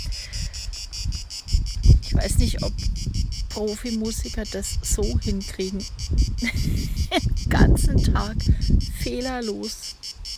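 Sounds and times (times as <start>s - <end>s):
low rumbling wind or handling noise: 0.0s - 9.2s
crickets chirping: 0.0s - 10.3s
speech: 2.2s - 10.0s
laughter: 6.4s - 7.4s.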